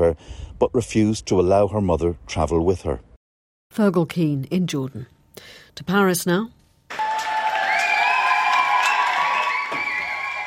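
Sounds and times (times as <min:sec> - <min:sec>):
speech: 0:00.0 - 0:03.1, 0:03.7 - 0:06.6
crowd cheering and whooping outside a courthouse in Paris: 0:06.9 - 0:10.4
people clapping outside a courthouse in Paris: 0:06.9 - 0:10.4.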